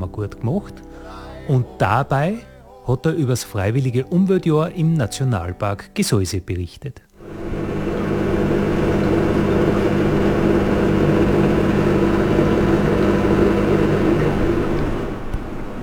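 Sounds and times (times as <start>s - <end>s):
speech: 0.2s - 7.1s
dishwasher running in a hunting lodge in a national park: 7.4s - 15.8s.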